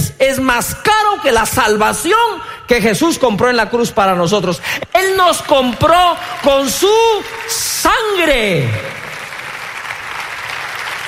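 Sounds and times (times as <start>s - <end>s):
speech: 0.3s - 9.0s
crowd applauding during a sermon: 5.0s - 11.0s.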